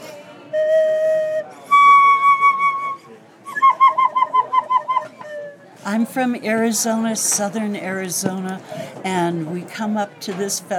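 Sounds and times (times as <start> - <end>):
handcrafted bamboo dragon whistle, top section of a bamboo flute: 0.5 - 5.6
speech: 5.9 - 10.7.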